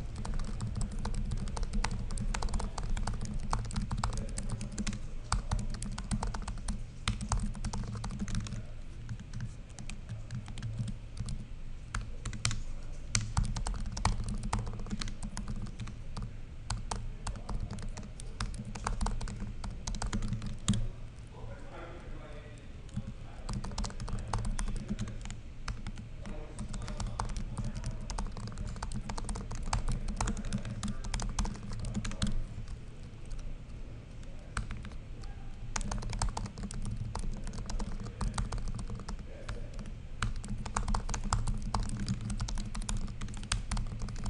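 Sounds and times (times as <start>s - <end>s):
typing on 2016 13-inch MacBook Pro second-generation butterfly keyboard: 0.0s - 20.9s, 22.9s - 33.5s, 34.5s - 44.2s.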